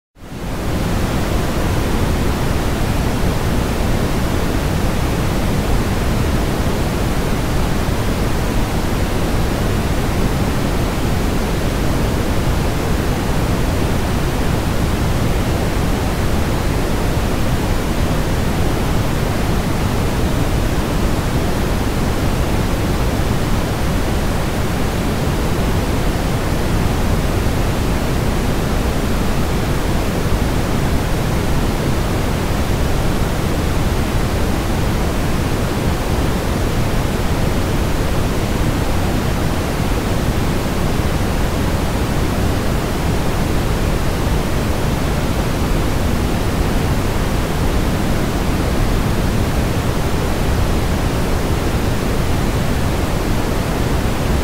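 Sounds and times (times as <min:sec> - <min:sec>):
brown noise: 0:00.3 - 0:54.4.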